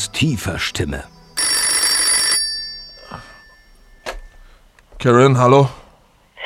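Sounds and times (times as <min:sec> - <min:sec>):
speech: 0:00.2 - 0:01.2, 0:05.0 - 0:05.8
telephone bell ringing with a bright metallic trill: 0:01.1 - 0:04.6.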